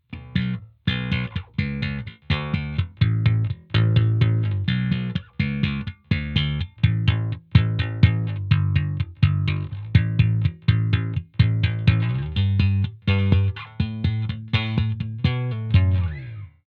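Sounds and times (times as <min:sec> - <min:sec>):
slap rock bass on a Fender Roadworn bass: 0:00.0 - 0:16.6.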